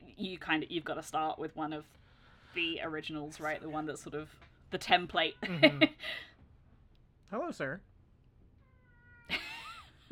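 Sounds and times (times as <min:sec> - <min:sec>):
speech: 0:00.2 - 0:06.3, 0:07.3 - 0:07.9
cat meowing: 0:08.5 - 0:09.6.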